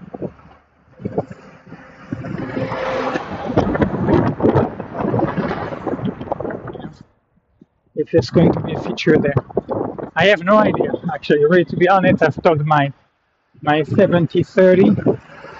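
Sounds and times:
truck rumbling past on a road: 0.0 - 6.7, 14.9 - 15.5
wind-like noise: 0.0 - 15.5
speech: 8.0 - 9.4, 10.2 - 13.0, 13.6 - 15.2.

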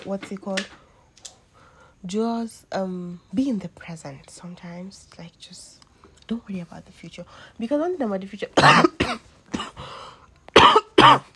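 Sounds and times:
speech: 0.0 - 0.8, 2.0 - 9.3, 11.1 - 11.3
person in a violent coughing fit: 8.6 - 9.9, 10.5 - 11.3.

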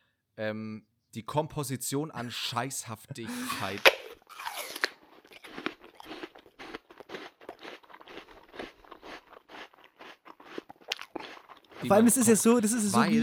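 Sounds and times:
speech: 0.4 - 4.0, 11.8 - 13.2
biting into a crunchy apple: 3.3 - 11.9
crunchy wet chewing of apple: 3.3 - 11.9.

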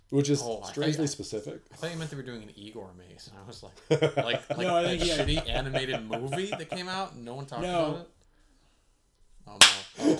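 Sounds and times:
speech: 0.1 - 8.2, 9.5 - 10.1
laughter: 3.8 - 7.9
sharp loud slap: 9.6 - 9.9.

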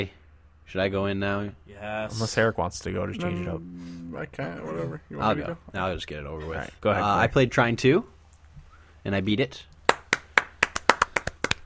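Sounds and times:
speech: 0.0 - 8.2, 9.0 - 9.7
person applauding with sharp hand claps: 9.8 - 11.6.

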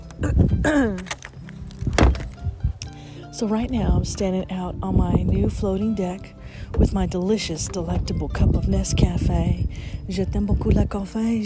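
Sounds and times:
speech: 0.2 - 1.2, 3.4 - 11.4
outside door shutting with a thump: 1.9 - 2.2.

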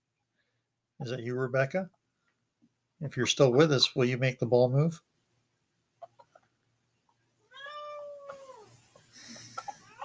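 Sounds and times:
speech: 1.0 - 2.0, 3.0 - 5.1
cat meowing: 7.5 - 8.7.

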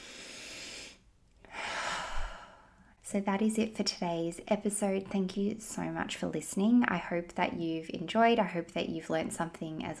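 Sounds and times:
deep breaths: 0.0 - 3.0
speech: 3.1 - 9.9.

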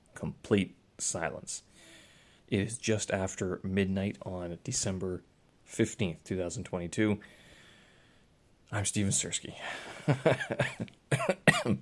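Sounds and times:
speech: 0.2 - 1.7, 2.5 - 7.4, 8.7 - 11.8
person coughing harshly: 10.2 - 11.8.

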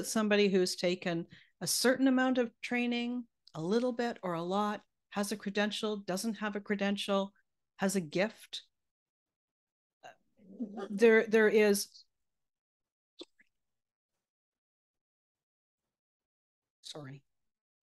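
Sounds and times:
speech: 0.0 - 8.7, 10.6 - 12.0, 16.9 - 17.2
dog growling: 10.4 - 11.0.

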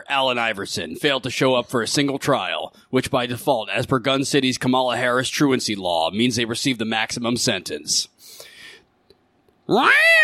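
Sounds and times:
speech: 0.1 - 8.5, 9.7 - 10.2
cat screeching over a loudspeaker: 9.7 - 10.2.

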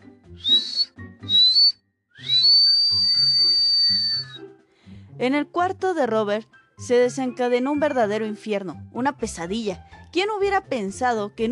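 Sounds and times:
shrill whistle blasts: 0.4 - 4.4
speech: 5.2 - 11.4.

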